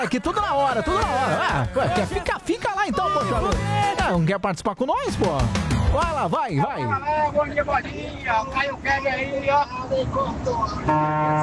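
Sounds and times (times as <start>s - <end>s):
laughter: 0.0s - 4.1s
voices chattering: 0.0s - 10.9s
speech: 0.0s - 11.4s
loud steady horn blaring: 10.8s - 11.4s.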